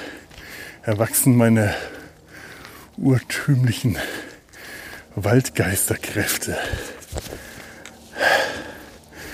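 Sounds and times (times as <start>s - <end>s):
person panting heavily while walking in a forest: 0.0s - 0.8s, 1.6s - 2.9s, 3.9s - 5.2s, 6.5s - 9.3s
speech: 0.8s - 2.0s, 3.0s - 4.2s, 5.2s - 7.5s.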